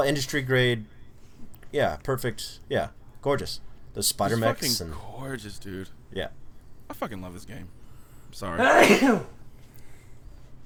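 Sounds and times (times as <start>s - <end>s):
speech: 0.0s - 1.0s, 1.7s - 9.4s
person sneezing: 8.6s - 9.4s.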